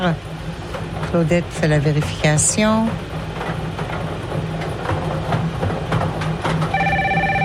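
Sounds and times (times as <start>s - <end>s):
speech: 0.0s - 0.3s, 1.1s - 3.1s
continuous low rumbling hum: 0.0s - 7.4s
telephone ringing during a bingo game: 6.7s - 7.4s.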